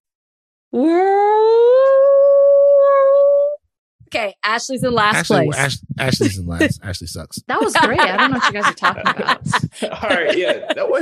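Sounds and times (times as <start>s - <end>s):
speech: 0.7s - 1.2s, 4.1s - 11.0s
person imitating a whale call: 0.8s - 3.6s
laughter: 5.0s - 11.0s.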